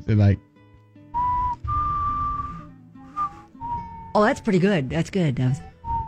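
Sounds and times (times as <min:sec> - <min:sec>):
speech: 0:00.1 - 0:00.5, 0:04.2 - 0:05.7
slow mournful whistled melody: 0:01.1 - 0:04.8, 0:05.5 - 0:06.0.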